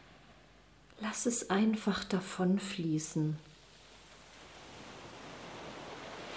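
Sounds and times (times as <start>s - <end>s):
speech: 1.0s - 3.5s
ocean surf with waves surging in: 3.5s - 6.3s.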